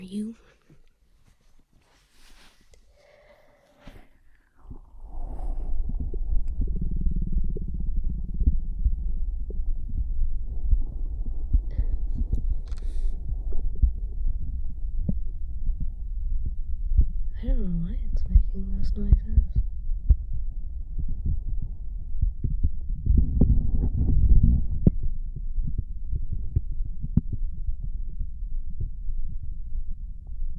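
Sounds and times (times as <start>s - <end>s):
speech: 0.1s - 0.5s
soft rustle: 0.4s - 6.2s
stomach rumbling and gurgling: 2.6s - 30.5s
heartbeat heard through the stomach: 3.8s - 30.5s.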